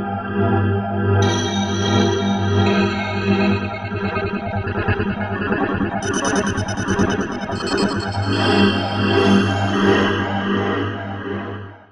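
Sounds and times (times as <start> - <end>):
Yamaha TG500 synthesizer grinding tone: 0.1 - 11.9.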